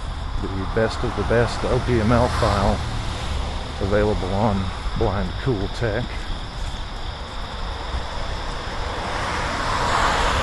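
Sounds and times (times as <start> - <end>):
wind-like roadway noise: 0.0 - 10.4
speech: 0.4 - 3.0, 3.8 - 6.2
car driving past: 0.7 - 4.1, 7.7 - 10.4.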